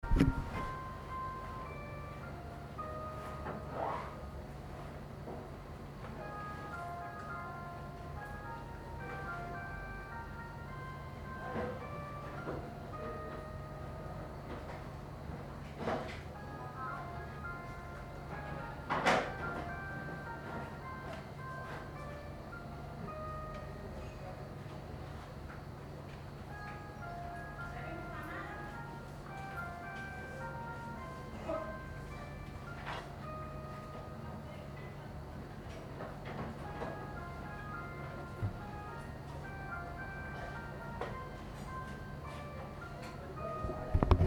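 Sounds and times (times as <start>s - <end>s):
music box: 0.0s - 44.2s.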